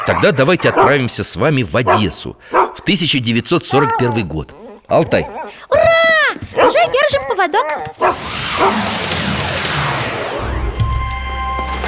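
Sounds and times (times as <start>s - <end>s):
speech: 0.1s - 5.9s, 6.6s - 9.1s
sharp bangs and clanks: 6.5s - 11.8s
sweeping mechanical whines: 7.9s - 11.7s
loud dense industrial noise of a busy factory floor: 8.0s - 11.8s.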